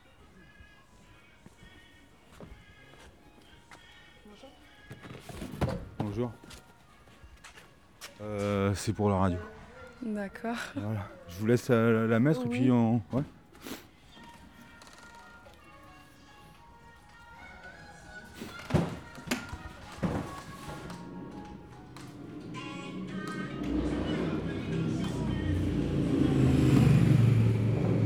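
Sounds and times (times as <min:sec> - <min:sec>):
speech: 0:06.2 - 0:06.6, 0:08.2 - 0:13.4
motorcycle engine idling and revving: 0:22.5 - 0:28.0.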